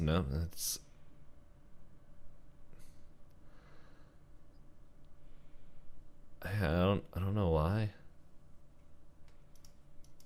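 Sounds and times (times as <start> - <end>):
speech: 0.0 - 0.8, 6.4 - 8.0
steady low hum: 0.0 - 10.2
computer keyboard typing: 9.5 - 10.2.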